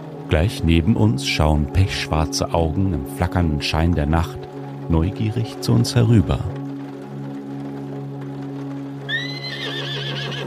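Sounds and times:
speech: 0:00.3 - 0:06.6
horse with a wet mane neighing at night: 0:09.1 - 0:10.4.

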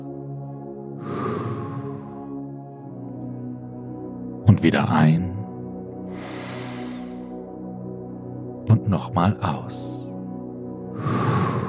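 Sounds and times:
deep breath in and out: 0:00.9 - 0:02.5, 0:06.0 - 0:07.5, 0:10.9 - 0:11.6
speech: 0:04.5 - 0:05.4, 0:08.9 - 0:10.0.

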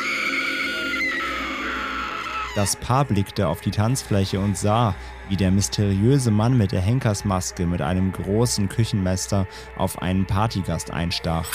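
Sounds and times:
loud sustained shrill scream: 0:00.0 - 0:02.9
speech: 0:02.6 - 0:11.5.

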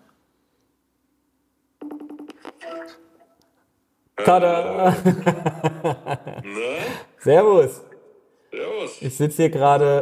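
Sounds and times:
outgoing phone call ringing tones: 0:01.8 - 0:03.2
speech: 0:02.7 - 0:03.1, 0:04.2 - 0:07.9, 0:08.9 - 0:10.0
laughter: 0:04.7 - 0:07.0.

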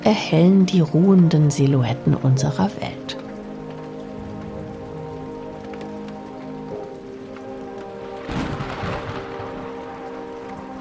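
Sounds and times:
speech: 0:00.0 - 0:03.2
heavy rain pouring down: 0:00.0 - 0:10.7.

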